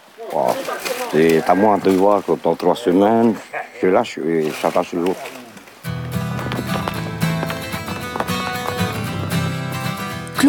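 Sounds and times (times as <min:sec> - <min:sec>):
speech: 0:00.2 - 0:05.4
horse hooves clip-clopping: 0:04.6 - 0:10.4.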